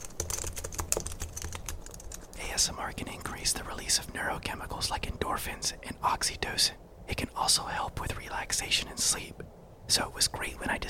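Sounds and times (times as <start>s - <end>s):
typing on a computer keyboard: 0.0s - 2.4s
speech: 2.6s - 10.8s.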